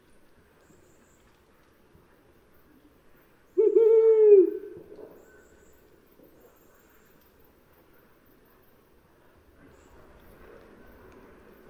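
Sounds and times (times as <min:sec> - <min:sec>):
brown wood owl hoot: 0:03.6 - 0:04.8.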